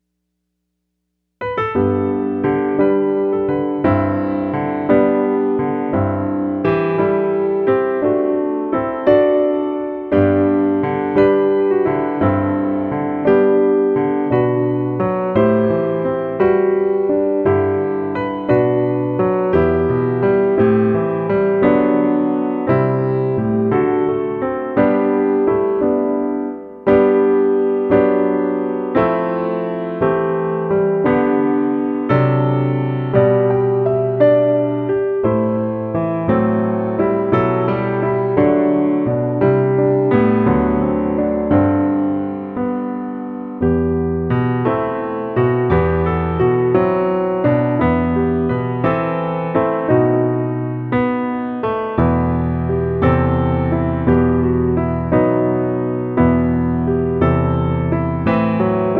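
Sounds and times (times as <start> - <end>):
piano accompaniment: 1.4 - 58.9.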